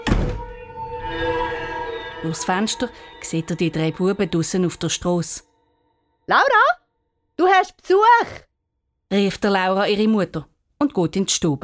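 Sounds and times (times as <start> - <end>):
house door shut by someone going inside: 0.0 - 0.6
steady lingering tonal hum: 0.0 - 5.8
speech: 2.2 - 5.5, 6.3 - 6.8, 7.4 - 8.5, 9.1 - 11.6.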